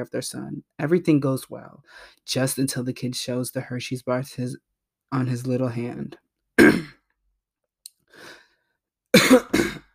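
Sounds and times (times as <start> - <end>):
speech: 0.0 - 7.0
person coughing: 6.6 - 7.0, 9.2 - 9.9.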